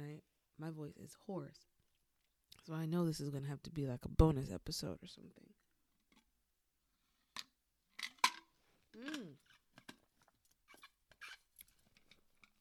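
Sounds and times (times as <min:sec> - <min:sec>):
speech: 0:00.6 - 0:01.8, 0:02.6 - 0:05.6, 0:09.0 - 0:09.4
person gulping water: 0:08.9 - 0:09.6.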